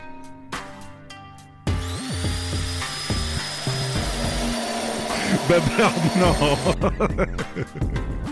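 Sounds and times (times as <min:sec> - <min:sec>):
electric hammer drill running: 0:01.7 - 0:06.8
laughter: 0:05.1 - 0:08.0
speech: 0:05.5 - 0:08.2.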